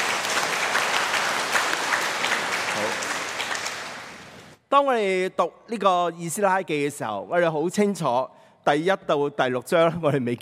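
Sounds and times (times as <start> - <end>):
audience applause: 0.0 - 4.6
speech: 4.7 - 10.4.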